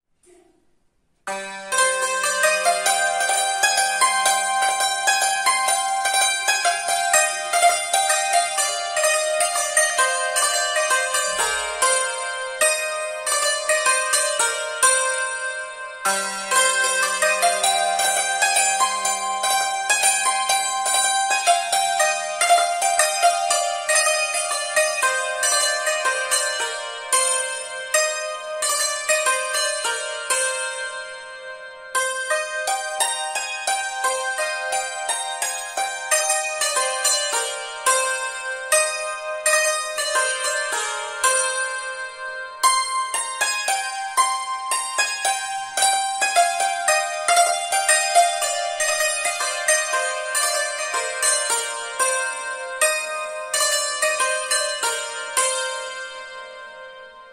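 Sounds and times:
santur playing: 1.2s - 57.3s.

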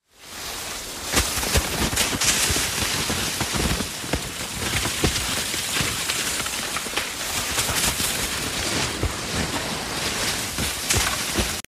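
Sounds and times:
avalanche: 0.1s - 11.7s.

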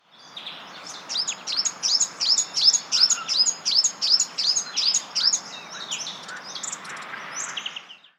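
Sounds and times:
spotted scrubwren calling: 0.8s - 7.7s.

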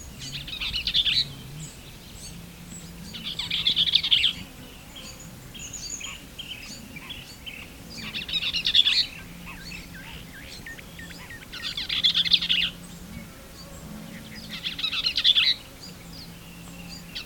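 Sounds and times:
Bell's vireo song of brisk scratchy phrases: 0.0s - 17.2s.

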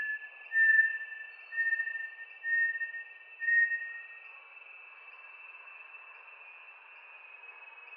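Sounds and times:
Bartlett's tinamou whistled call: 0.0s - 4.1s.

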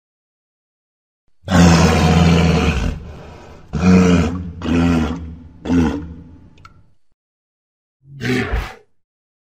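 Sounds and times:
walrus bellowing with harsh roars and grunts: 1.5s - 6.4s.

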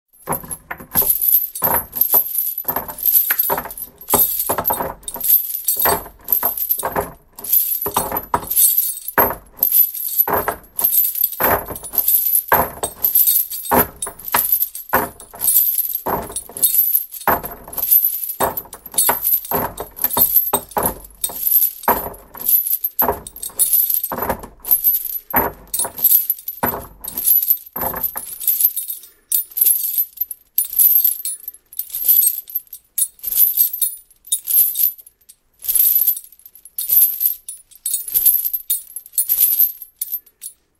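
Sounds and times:
shackles rattling: 0.2s - 31.4s.

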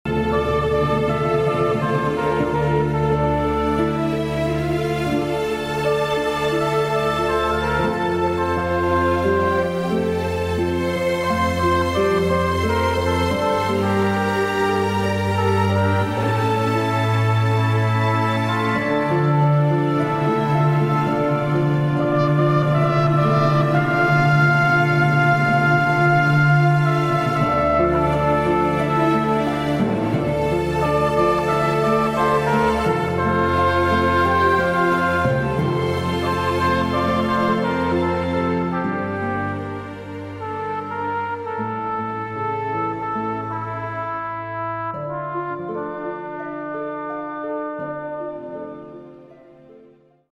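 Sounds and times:
cornet playing: 0.0s - 49.5s.

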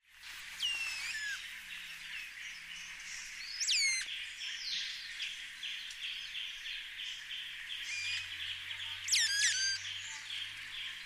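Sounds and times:
steady background hiss: 0.1s - 11.0s
Black saw-wing giving short sharp downslurred chirps: 3.6s - 4.1s, 7.8s - 10.3s.

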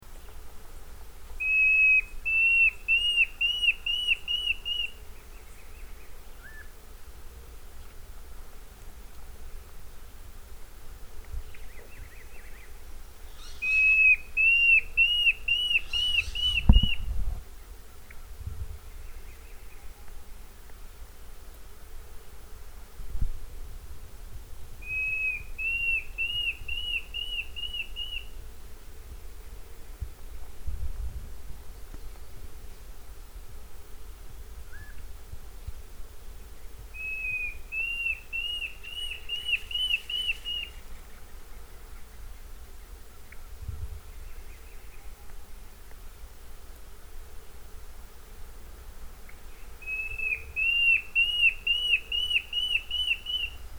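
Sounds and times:
Mackenziaena bird calling: 1.4s - 6.8s, 11.5s - 17.0s, 24.8s - 28.4s, 36.9s - 43.5s, 49.2s - 53.6s.

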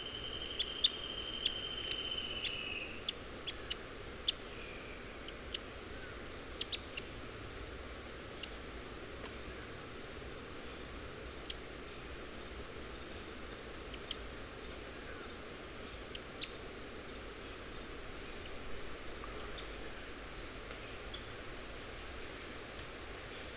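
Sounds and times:
high insect-like hum: 0.0s - 23.5s
pink-legged graveteiro giving sharp very high ticking notes: 0.2s - 4.4s.

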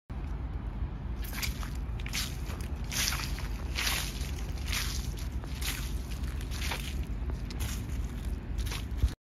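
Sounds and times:
walking on dry leaves: 1.2s - 9.2s.

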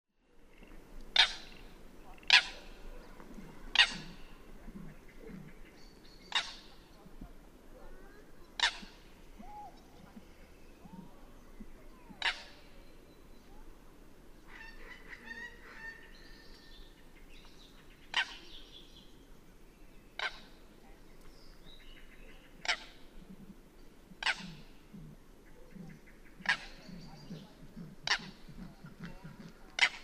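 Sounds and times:
Tasmanian nativehen: 0.5s - 13.8s, 14.4s - 18.8s, 20.2s - 30.0s.

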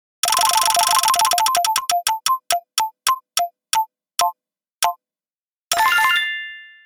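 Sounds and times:
wheel of luck: 0.2s - 5.0s.

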